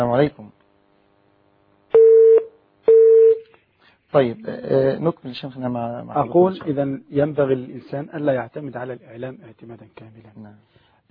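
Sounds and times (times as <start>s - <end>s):
speech: 0.0s - 0.6s, 4.1s - 11.0s
telephone line tone beeps as a caller connects: 1.9s - 3.4s.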